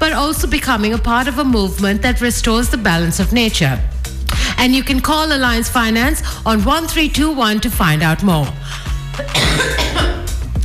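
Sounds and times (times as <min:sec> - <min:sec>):
speech: 0:00.2 - 0:04.0, 0:04.6 - 0:10.1
harsh throaty coughing from a person sick with a cold: 0:09.1 - 0:10.4.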